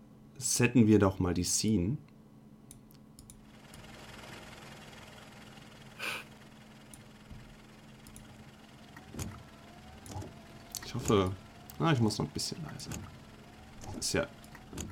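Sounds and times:
speech: 0.4s - 2.1s, 11.1s - 13.2s, 14.0s - 14.9s
low engine hum inside a car: 3.4s - 14.9s
loud motorized windshield wipers sweeping: 8.9s - 14.9s.

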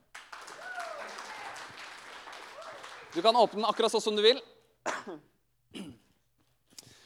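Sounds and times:
small crowd applauding: 0.0s - 4.4s
excited voices and whoops: 0.5s - 3.6s
speech: 3.1s - 5.3s.

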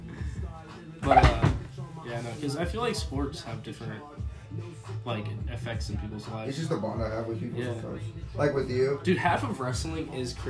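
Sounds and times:
door opening or closing: 1.0s - 1.7s
speech: 1.1s - 1.3s, 2.1s - 10.4s.

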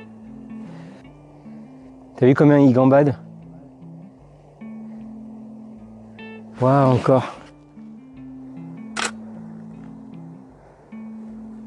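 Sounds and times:
steady low drone with shifting humming tones: 0.0s - 11.6s
speech: 2.2s - 3.2s, 6.6s - 7.4s
camera shutter click taking a photo: 8.9s - 9.2s.

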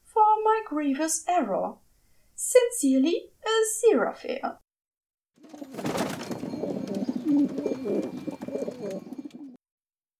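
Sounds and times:
speech: 0.7s - 1.8s, 2.5s - 4.6s, 7.3s - 9.1s
faint pigeon wing flutters: 5.4s - 9.6s
flock of pigeons cooing: 5.4s - 9.6s.

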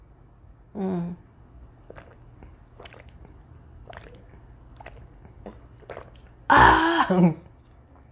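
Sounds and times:
low hum: 0.0s - 8.1s
person drinking water: 1.8s - 7.6s
speech: 7.1s - 7.4s.

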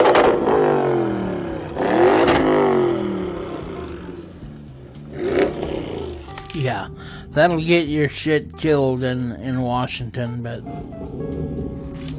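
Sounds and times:
car engine revving loudly: 0.0s - 6.6s, 10.8s - 12.1s
speech: 7.0s - 11.4s.

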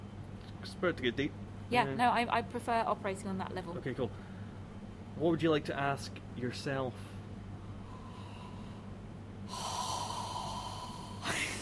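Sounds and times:
speech: 0.6s - 4.3s, 5.2s - 7.1s
person exhaling: 7.8s - 8.9s, 9.5s - 11.6s.

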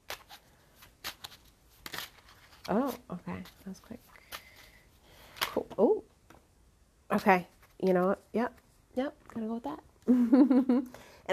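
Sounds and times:
playing cards being shuffled: 0.0s - 5.8s
speech: 2.7s - 4.2s, 7.2s - 11.3s.

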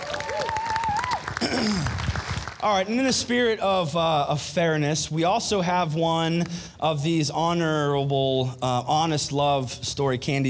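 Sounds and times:
whistles and cheers: 0.0s - 1.3s
crowd applauding: 0.0s - 3.1s
speech: 1.4s - 2.0s, 2.6s - 10.4s.

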